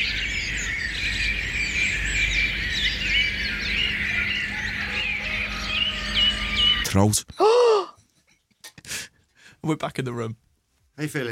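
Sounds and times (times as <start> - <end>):
dense chorus of birdsong with chirps and warbling calls: 0.0 - 8.7
speech: 7.0 - 7.6, 9.7 - 11.3.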